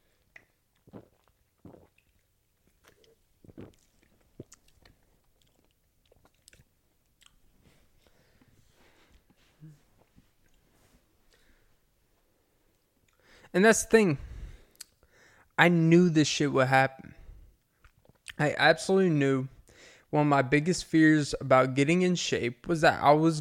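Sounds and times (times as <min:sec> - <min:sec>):
soft gulps: 0:00.0 - 0:10.7
person sipping an energy drink: 0:00.2 - 0:07.4
speech: 0:13.5 - 0:14.3, 0:15.6 - 0:17.1, 0:18.4 - 0:23.3.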